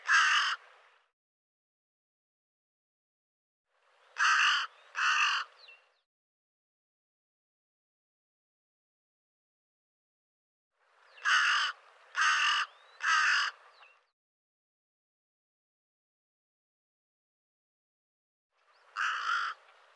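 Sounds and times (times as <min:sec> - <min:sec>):
bird giving harsh raspy caws: 0:00.0 - 0:00.6, 0:04.2 - 0:05.8, 0:11.1 - 0:14.0, 0:18.8 - 0:19.8.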